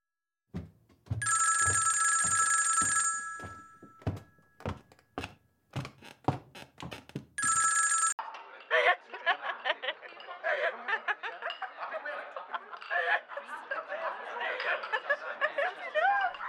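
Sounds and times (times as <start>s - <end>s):
telephone bell ringing loudly: 1.2s - 4.2s, 7.4s - 8.2s
laughter: 8.4s - 16.4s.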